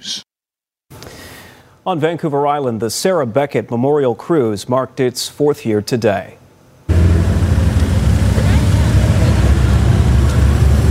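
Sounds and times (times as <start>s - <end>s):
speech: 1.8s - 6.4s
convoy of car engines rumbling as vehicles drive past: 6.9s - 10.8s.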